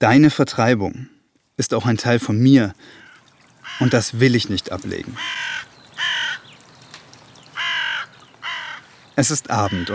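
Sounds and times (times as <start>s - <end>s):
speech: 0.0s - 3.0s, 3.7s - 5.7s, 9.2s - 9.9s
crows cawing at dusk: 2.8s - 4.2s, 5.0s - 9.9s.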